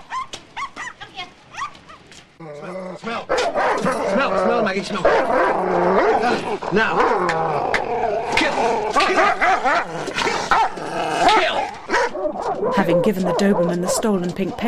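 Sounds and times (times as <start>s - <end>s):
three small terriers barking, yapping and whining: 0.0s - 14.6s
speech: 2.4s - 14.6s.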